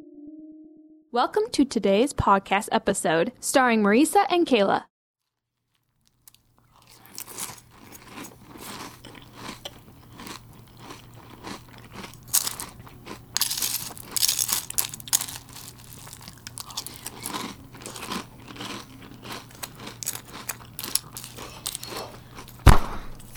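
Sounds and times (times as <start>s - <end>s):
speech: 1.1s - 4.9s
loud wet open-mouth chewing and crunching: 5.3s - 23.3s.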